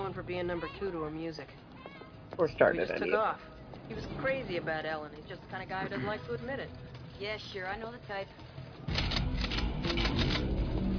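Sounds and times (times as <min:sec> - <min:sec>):
speech: 0:00.1 - 0:01.7, 0:02.3 - 0:09.0
guns clicking and rattling as they are handled and readied: 0:08.9 - 0:10.5.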